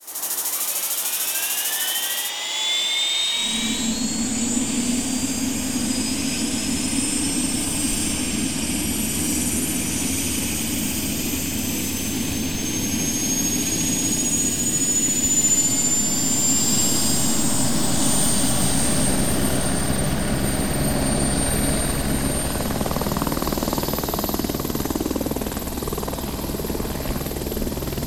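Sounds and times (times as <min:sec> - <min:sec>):
helicopter engine starting: 0:00.0 - 0:28.0.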